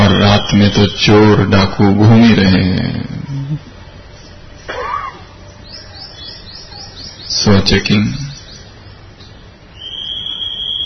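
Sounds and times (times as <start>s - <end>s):
low rumble: 0.0s - 10.8s
speech: 0.4s - 3.7s, 7.3s - 8.2s
night watchman's whistle blowing: 9.8s - 10.8s.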